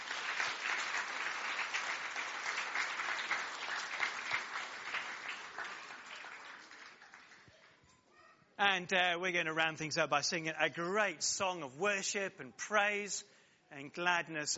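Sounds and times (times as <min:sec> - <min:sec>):
audience applause from a sizable group: 0:00.0 - 0:07.6
speech: 0:08.6 - 0:14.5.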